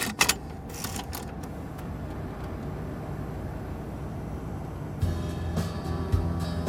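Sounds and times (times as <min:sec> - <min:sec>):
road noise inside a driven car: 0:00.0 - 0:06.6
steady low rumble inside a recently acquired car being driven: 0:00.0 - 0:06.6.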